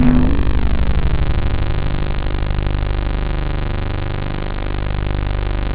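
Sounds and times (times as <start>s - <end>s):
low synth: 0.0s - 5.6s.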